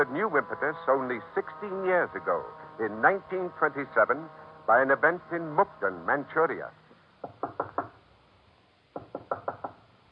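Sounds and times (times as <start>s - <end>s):
speech: 0.0s - 7.4s
knocking on a wooden door: 7.2s - 8.0s, 9.0s - 9.8s.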